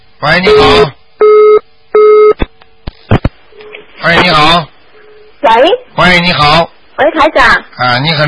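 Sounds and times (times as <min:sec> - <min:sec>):
speech: 0:00.2 - 0:01.0, 0:05.4 - 0:08.2
telephone busy tone beeps after a call line drops: 0:00.5 - 0:02.4.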